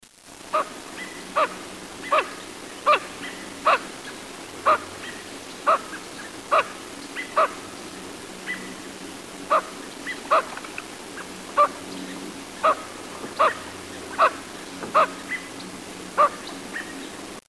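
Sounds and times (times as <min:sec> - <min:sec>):
lesser scaup calling: 0:00.5 - 0:03.9, 0:04.6 - 0:07.6, 0:09.5 - 0:11.8, 0:12.6 - 0:15.5, 0:16.2 - 0:17.0.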